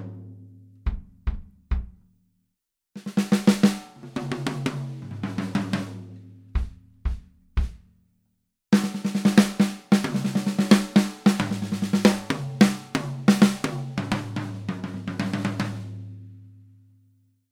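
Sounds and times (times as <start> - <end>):
big beat jazz drums: 0.9 - 2.0, 3.0 - 7.9, 8.7 - 16.5.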